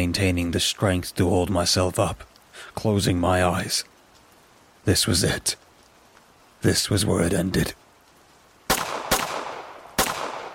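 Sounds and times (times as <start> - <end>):
speech: 0.0 - 3.9, 4.8 - 5.6, 6.6 - 7.8
gunshots: 8.7 - 10.5.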